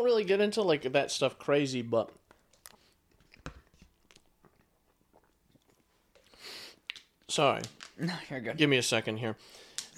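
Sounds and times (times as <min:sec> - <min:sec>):
speech: 0:00.0 - 0:02.2, 0:07.3 - 0:09.9
wet crunchy chewing of food: 0:02.1 - 0:07.1.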